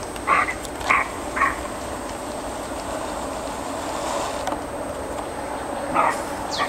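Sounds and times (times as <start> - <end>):
steady background hiss: 0.0 - 6.6
roe deer harsh calls: 0.2 - 1.8.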